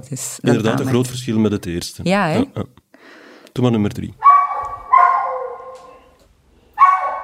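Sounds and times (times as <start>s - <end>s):
speech: 0.0s - 4.3s
anxious dog barking and whining, scared of being alone: 4.2s - 6.2s, 6.8s - 7.2s.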